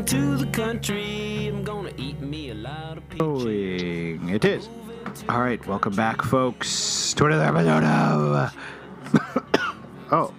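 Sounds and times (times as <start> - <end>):
speech: 0.0 - 9.4, 10.1 - 10.3
person coughing: 9.1 - 9.8.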